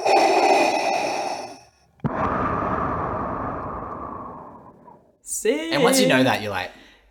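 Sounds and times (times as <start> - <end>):
mechanical respirator breathing through scuba breathing apparatus: 0.0 - 5.2
speech: 5.4 - 7.1.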